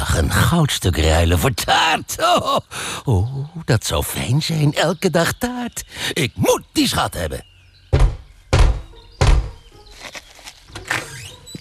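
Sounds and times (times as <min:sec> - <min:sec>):
speech: 0:00.2 - 0:08.0
heavy banging on the door of a small house: 0:07.9 - 0:09.7
shuffling and rustling: 0:08.0 - 0:11.6.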